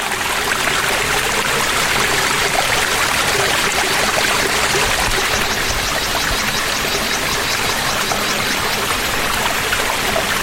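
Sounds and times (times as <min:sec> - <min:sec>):
water trickling in a low-flowing waterfall after hot days with no rain: 0:00.0 - 0:10.4.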